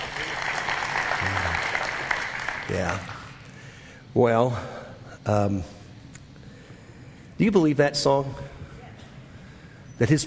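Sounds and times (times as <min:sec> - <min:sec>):
audience clapping: 0:00.0 - 0:03.5
speech: 0:02.7 - 0:03.1, 0:04.1 - 0:05.8, 0:07.4 - 0:08.6, 0:10.0 - 0:10.2.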